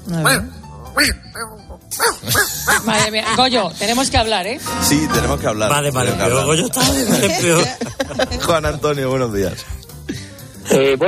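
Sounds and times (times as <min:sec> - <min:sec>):
human voice imitating the bark of a Yorkshire terrier: 0:00.1 - 0:03.0
speech: 0:00.1 - 0:11.0
laughter: 0:02.2 - 0:03.8, 0:06.8 - 0:08.8.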